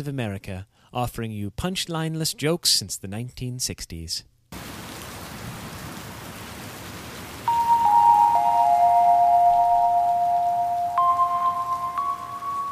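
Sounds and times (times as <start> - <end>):
speech: 0.0 - 4.3
rain falling: 4.6 - 12.7
soft sustained chime-like tones: 7.5 - 12.7.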